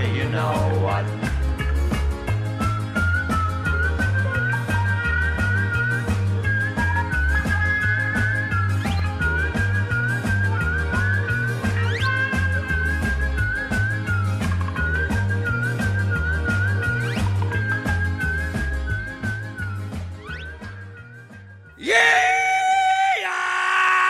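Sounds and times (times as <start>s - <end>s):
bass-driven music track with a thin whistling tone: 0.0s - 21.8s
speech: 0.3s - 1.2s
high-pitched rebel yell shout: 21.8s - 24.0s.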